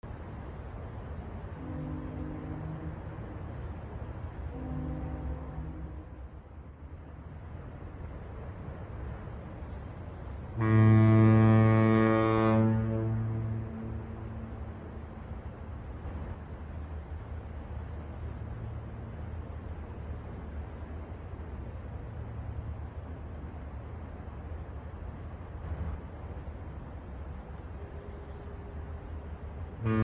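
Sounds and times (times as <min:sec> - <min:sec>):
close and distant harbor fog horns: 0:01.4 - 0:06.5, 0:10.5 - 0:16.2, 0:29.1 - 0:30.0.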